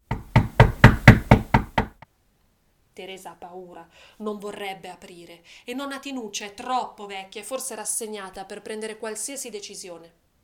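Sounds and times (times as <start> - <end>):
knocking on a door: 0.0 - 2.0
speech: 3.0 - 10.2.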